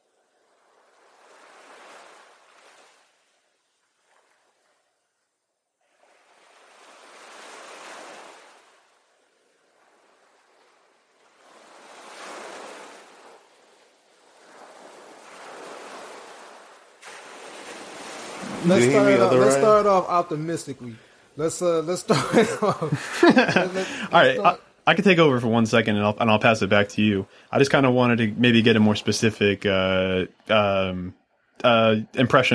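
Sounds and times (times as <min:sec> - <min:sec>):
ocean waves breaking on shore: 0:00.0 - 0:05.2, 0:05.8 - 0:24.8
laughter: 0:18.5 - 0:24.6
speech: 0:18.6 - 0:32.5.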